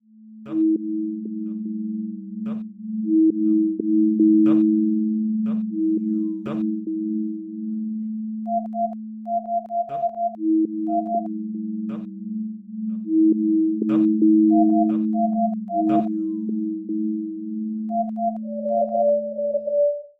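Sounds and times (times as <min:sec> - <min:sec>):
sine wave tones: 0:00.0 - 0:20.1.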